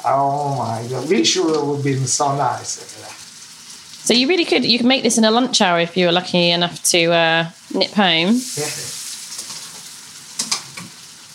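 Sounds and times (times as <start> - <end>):
speech: 0.0 - 3.2, 4.0 - 9.0
pasta sizzling in a frying pan: 0.0 - 11.3
sharper pops and clatters from frying pan: 9.3 - 11.0.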